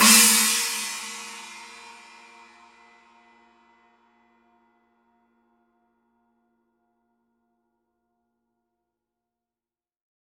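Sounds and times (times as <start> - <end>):
18 inch china cymbal edge: 0.0 - 3.1.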